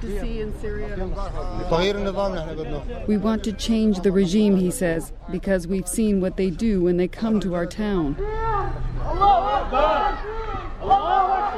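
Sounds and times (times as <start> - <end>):
speech: 0.0 - 8.4
angry crowd shouting and chanting at a street protest: 8.1 - 11.5.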